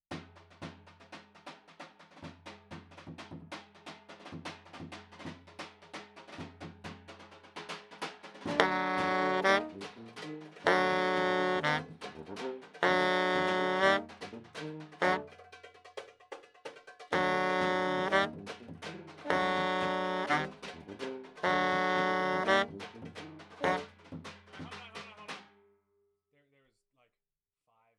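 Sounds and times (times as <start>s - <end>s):
baritone saxophone: 8.4s - 15.5s, 17.1s - 24.2s.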